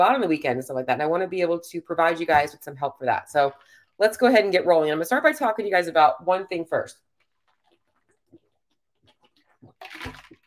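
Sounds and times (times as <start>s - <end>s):
speech: 0.0s - 7.0s
person gulping water: 7.2s - 10.4s.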